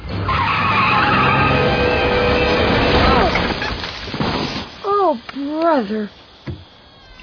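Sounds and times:
car tires skidding in a long squeal: 0.1 - 3.7
speech: 5.8 - 6.2.

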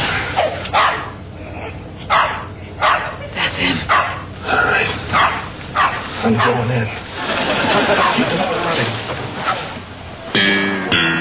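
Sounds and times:
low hum: 0.0 - 11.1
dog barking: 0.4 - 1.2, 2.1 - 3.3, 3.9 - 4.3, 5.2 - 6.7, 7.8 - 8.3
laughter: 3.0 - 3.9, 7.0 - 9.7
speech: 6.3 - 7.0.

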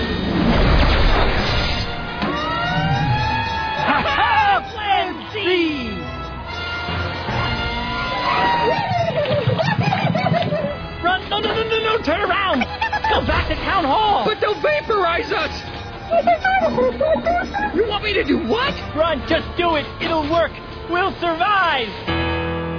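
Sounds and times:
crashing noise: 0.1 - 2.3
fire truck siren wailing in rising and falling sweeps: 1.2 - 22.4
voices shouting: 2.0 - 9.6, 10.9 - 22.0
laughter: 2.4 - 6.1, 8.1 - 18.8.

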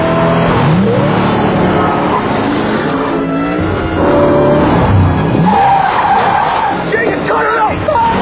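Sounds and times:
car engine roaring at high speed: 0.0 - 8.2
car tires skidding and squealing: 0.0 - 8.2.

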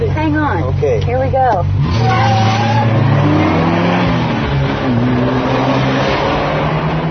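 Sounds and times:
car engine accelerating hard through gears: 0.0 - 7.0
road and tire noise: 0.0 - 7.0
speech: 0.5 - 2.6
car tires skidding: 1.8 - 7.0.

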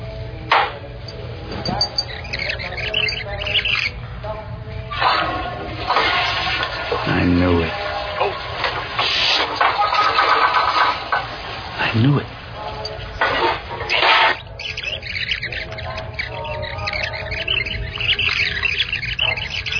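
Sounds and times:
voices: 0.2 - 19.7
toilet flushing with swirling water: 4.9 - 14.8.

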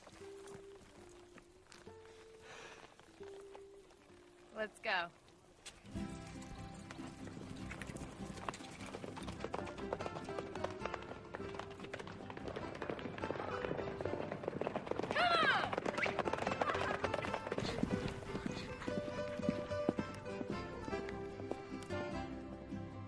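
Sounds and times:
horse hooves clip-clopping: 0.0 - 22.9
speech: 4.6 - 5.2.

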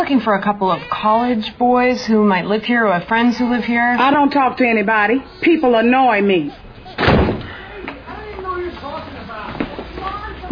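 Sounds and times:
speech: 0.0 - 6.6
voices: 2.5 - 10.4
heavy thud against a door: 7.0 - 7.6.

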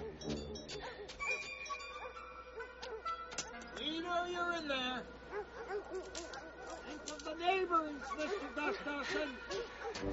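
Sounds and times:
doorbell ringing with metallic chiming tones: 0.2 - 3.8
speech: 4.1 - 10.1.

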